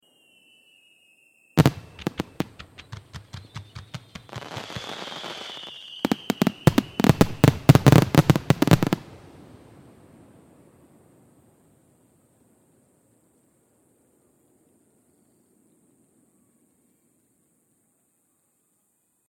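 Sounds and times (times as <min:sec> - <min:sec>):
rapid-fire fireworks: 0:01.6 - 0:09.2.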